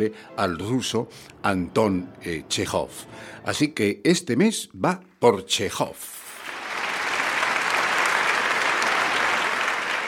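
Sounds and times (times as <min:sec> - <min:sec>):
speech: 0:00.0 - 0:06.2
crowd applauding: 0:06.3 - 0:10.0.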